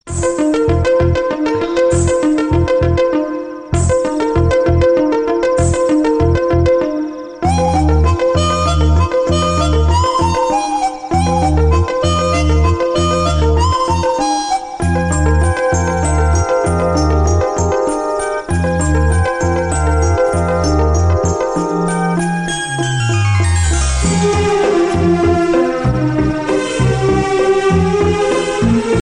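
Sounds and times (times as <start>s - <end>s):
Malayalam romantic tone: 0.0s - 29.0s.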